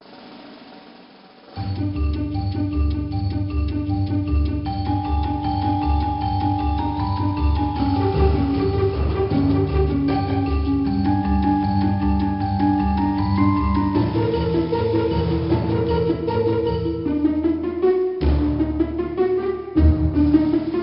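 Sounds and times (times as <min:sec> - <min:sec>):
music: 0:00.0 - 0:20.8.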